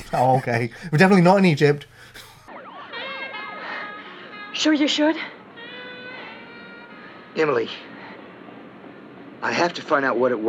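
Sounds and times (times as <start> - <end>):
speech: 0.1 - 2.3, 4.6 - 5.4, 7.4 - 7.9, 9.4 - 10.4
low rumble of traffic: 1.8 - 10.4
several police sirens wailing: 2.4 - 9.4.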